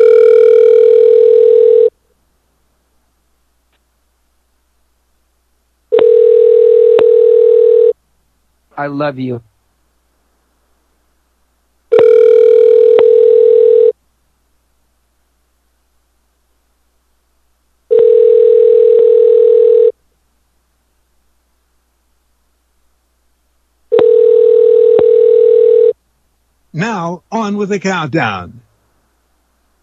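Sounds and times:
telephone ring tone from a call left ringing: 0.0 - 1.9, 5.9 - 8.0, 11.9 - 13.9, 17.9 - 19.9, 23.9 - 26.0
speech: 8.8 - 9.5, 27.5 - 28.6.

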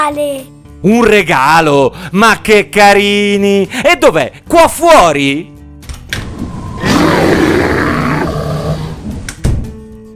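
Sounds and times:
speech: 0.0 - 5.5
sleepy bear close to hibernation time roaring: 6.4 - 9.2.

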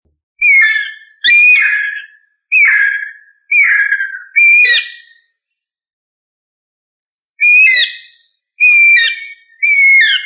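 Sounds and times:
bird song with loud ringing phrases and falling whistled notes: 0.4 - 5.4, 7.3 - 10.2.

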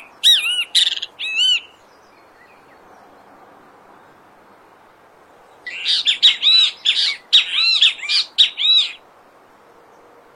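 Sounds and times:
Great kiskadee singing harsh buzzy phrases in Brazil: 0.0 - 2.8, 5.6 - 9.0
quiet hiss: 0.0 - 10.3.

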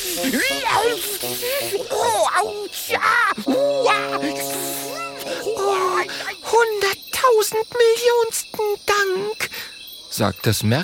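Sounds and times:
snake in a children's jungle story hissing as it flees into the bushes: 0.0 - 6.5
snake in a children's jungle story shrieking as it flees: 0.0 - 7.4
speech: 0.2 - 9.4, 10.2 - 10.8.

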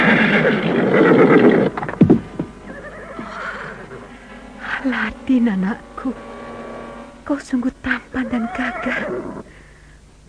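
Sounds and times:
horse neighing: 0.0 - 1.8, 2.7 - 5.2, 8.0 - 9.5
heavy hoof thumps: 1.6 - 3.4
speech: 5.4 - 6.3, 7.3 - 9.5.

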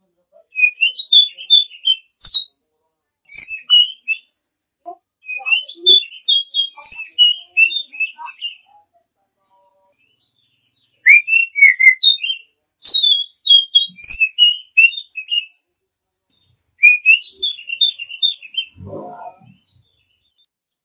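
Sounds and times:
champion Oriental magpie-robin singing: 0.5 - 2.5, 3.3 - 4.3, 5.2 - 8.7, 11.0 - 15.7, 16.8 - 19.6.

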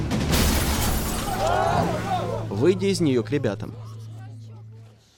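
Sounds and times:
car crashing into a fence: 0.2 - 2.5
speech: 2.6 - 3.9.

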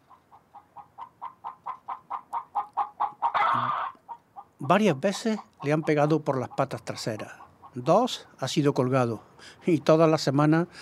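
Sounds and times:
hen clucking: 0.0 - 8.3
speech: 4.7 - 10.7.

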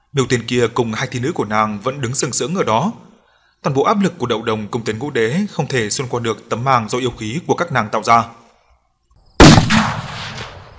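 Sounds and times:
speech: 0.1 - 8.4
loud explosion in a battle scene: 9.4 - 10.7.

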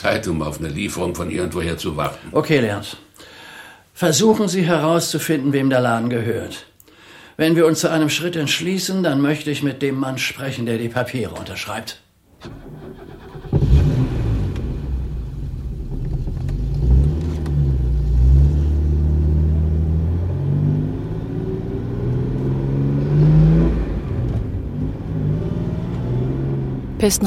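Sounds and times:
speech: 0.0 - 3.4, 4.0 - 6.7, 7.4 - 13.3, 27.0 - 27.2
car engine revving: 12.4 - 27.1.

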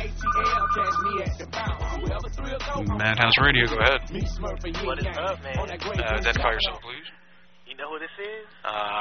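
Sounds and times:
telephone ringing: 0.2 - 1.5
speech: 0.7 - 7.1, 7.8 - 8.9.

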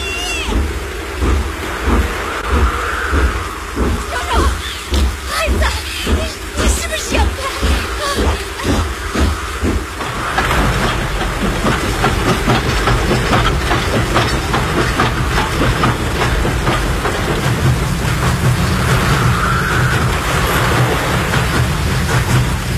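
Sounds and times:
dense continuous rushing wash: 0.0 - 22.7
train rolling slowly onto a flooded railway embankment: 0.0 - 22.7.

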